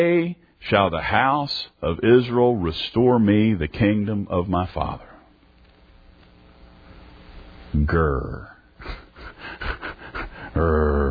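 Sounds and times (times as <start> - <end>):
speech: 0.0 - 5.1, 7.7 - 9.0, 10.6 - 11.1
breathy raspy huffing: 8.8 - 11.1
man growling in a low rough voice: 10.4 - 11.1.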